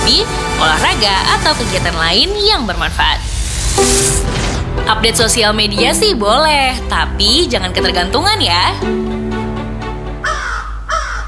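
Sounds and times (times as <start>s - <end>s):
speech: 0.1s - 9.0s
crow cawing: 10.2s - 11.2s.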